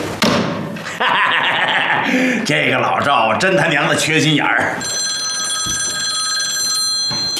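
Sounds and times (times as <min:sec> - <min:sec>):
thud: 0:00.2 - 0:00.7
laughter: 0:00.8 - 0:03.9
old-style telephone bell ringing: 0:04.7 - 0:07.3.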